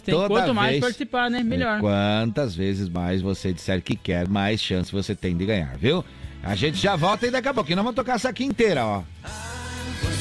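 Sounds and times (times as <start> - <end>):
speech: 0.0 - 10.1
horse whinnying: 6.6 - 7.8.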